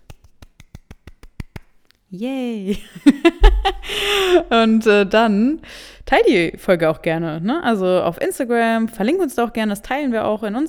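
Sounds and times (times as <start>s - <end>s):
quick sharp hand clapping: 0.0s - 1.8s
speech: 2.1s - 10.6s
laughter: 2.7s - 5.1s.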